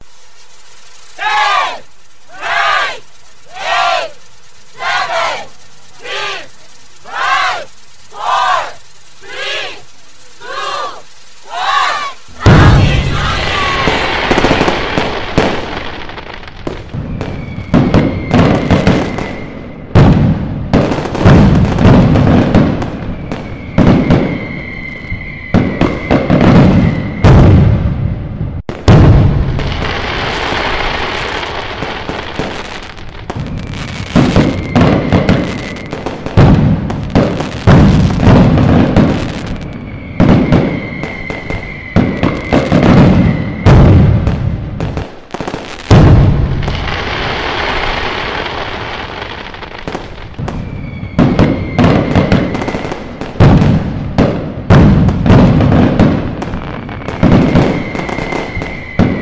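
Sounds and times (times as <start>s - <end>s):
fireworks exploding: 0.0s - 59.2s
happy new year countdown: 1.2s - 13.9s.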